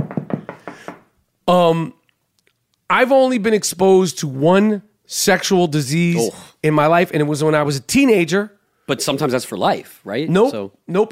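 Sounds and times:
hollow knocks on oak wood: 0:00.0 - 0:01.1
speech: 0:01.5 - 0:02.0, 0:02.9 - 0:11.1
brief loud vocal sound: 0:06.2 - 0:06.5.

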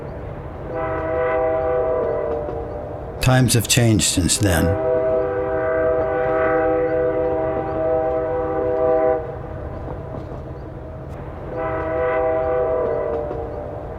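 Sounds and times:
long droning train horn blasts: 0:00.7 - 0:02.7, 0:04.7 - 0:09.4, 0:11.5 - 0:13.5
speech: 0:03.3 - 0:04.9.

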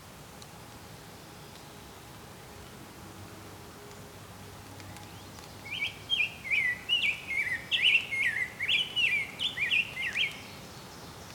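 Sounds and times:
low background noise: 0:00.0 - 0:11.3
ovenbird song of repeated high two-note phrases: 0:04.9 - 0:11.3.

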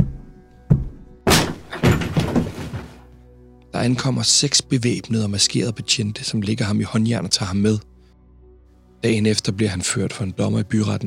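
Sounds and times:
heavy thud: 0:00.7 - 0:03.1
splintering rattling debris: 0:01.3 - 0:03.0
door being kicked in with a crashing impact: 0:01.3 - 0:03.1
speech: 0:03.8 - 0:07.9, 0:09.0 - 0:11.0.

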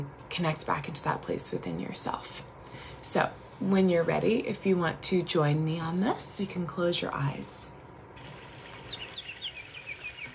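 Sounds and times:
speech: 0:00.0 - 0:07.8
flowing stream water: 0:08.2 - 0:10.3
bird chirping: 0:08.3 - 0:10.3.

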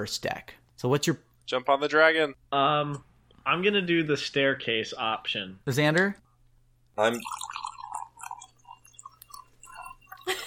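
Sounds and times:
speech: 0:00.0 - 0:06.2, 0:07.0 - 0:07.6
faint low hum: 0:00.0 - 0:10.4
wine pouring into a glass: 0:07.0 - 0:10.4.

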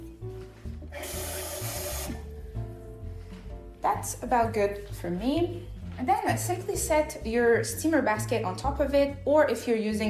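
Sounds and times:
water rushing from a tap into a metal pot: 0:00.9 - 0:02.2
speech: 0:03.9 - 0:10.0.

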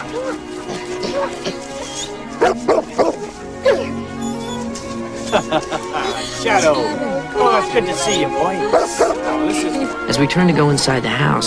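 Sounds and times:
laughter: 0:00.0 - 0:01.8, 0:02.4 - 0:10.9
dog whimpering with high whines: 0:01.1 - 0:05.6, 0:06.2 - 0:10.0
dog barking and yipping excitedly: 0:02.4 - 0:04.0, 0:08.7 - 0:09.4
speech: 0:06.4 - 0:11.4.

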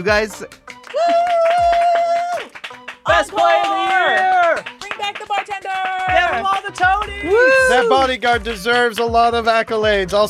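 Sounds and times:
speech: 0:00.0 - 0:01.3, 0:03.2 - 0:10.2
small group hand clapping imitating audience applause: 0:00.0 - 0:09.8.

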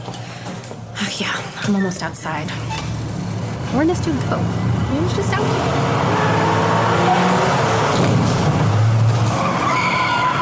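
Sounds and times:
speech: 0:01.1 - 0:02.8, 0:03.7 - 0:06.4
road noise: 0:02.2 - 0:10.4
car engine rumble: 0:02.3 - 0:09.5
car tires skidding and squealing while braking: 0:06.0 - 0:10.4.

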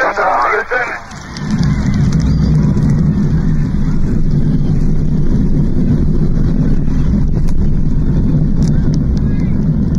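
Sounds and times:
Saturn V rocket launch roar: 0:00.0 - 0:09.9.

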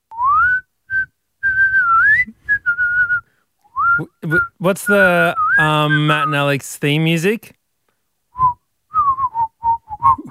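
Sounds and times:
person whistling a short melody: 0:00.1 - 0:04.6, 0:05.3 - 0:06.3, 0:08.3 - 0:10.2
speech: 0:04.0 - 0:07.6.

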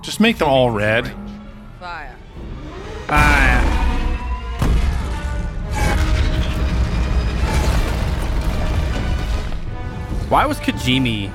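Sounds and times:
speech: 0:00.0 - 0:02.1, 0:03.1 - 0:03.7, 0:10.3 - 0:11.3
dense roaring rumble of a planet explosion: 0:00.6 - 0:10.6
explosion sound effect of a planet blowing up: 0:03.1 - 0:09.7.

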